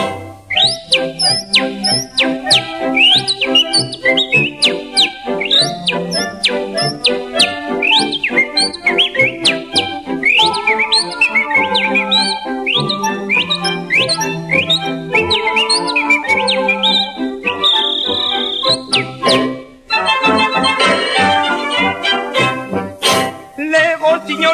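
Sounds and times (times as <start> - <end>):
person whistling birdlike chirps and trills imitating birdsong: 0.0 - 19.5
musical accompaniment: 0.0 - 24.5.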